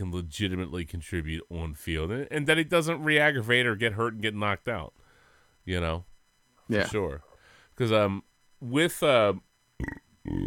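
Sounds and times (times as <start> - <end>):
speech: 0.0 - 5.0, 5.6 - 6.1, 6.7 - 10.4
long loud throaty burps: 6.7 - 7.0, 9.8 - 10.4
short voiced sounds: 6.7 - 7.1.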